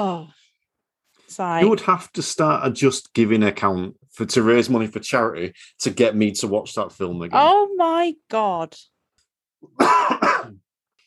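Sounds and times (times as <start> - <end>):
speech: 0.0 - 0.4, 1.3 - 8.9, 9.6 - 10.6
person coughing: 9.6 - 10.7.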